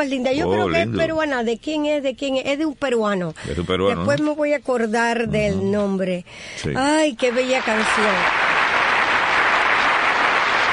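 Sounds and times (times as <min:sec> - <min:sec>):
speech: 0:00.0 - 0:08.4
applause after a song: 0:07.3 - 0:10.7.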